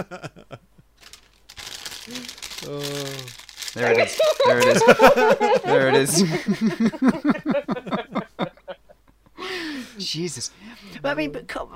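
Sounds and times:
speech: 0.0s - 0.6s, 2.1s - 3.0s, 3.8s - 7.6s, 10.1s - 11.7s
aluminum foil crumpled and shaped into a hat: 1.0s - 4.8s
laughter: 3.8s - 9.0s.

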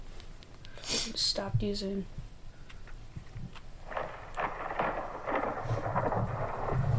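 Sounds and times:
faint rain-like hiss: 0.0s - 6.9s
speech: 1.0s - 2.2s
deep thunder rumbling with crackling bursts: 3.8s - 6.9s.

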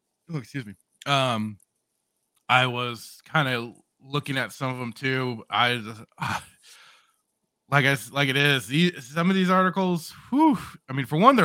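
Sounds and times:
speech: 0.3s - 1.6s, 2.5s - 6.8s, 7.7s - 11.4s
person yawning: 10.3s - 10.8s.

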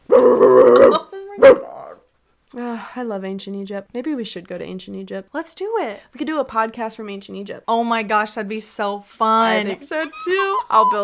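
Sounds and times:
dog giving a rough growling bark: 0.1s - 2.0s
speech: 3.0s - 11.0s.

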